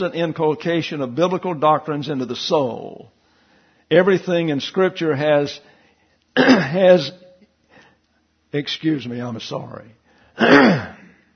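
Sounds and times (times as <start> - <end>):
speech: 0.0 - 3.2, 3.9 - 5.7, 6.4 - 7.2, 8.5 - 10.9
person clearing throat with rasping hacks and grunts: 6.4 - 6.8, 10.4 - 11.2.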